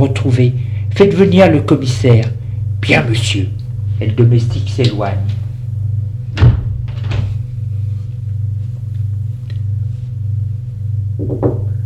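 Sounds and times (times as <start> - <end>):
speech: 0.0 - 5.4
low droning hum: 0.0 - 11.8
door latch knock: 11.2 - 11.8.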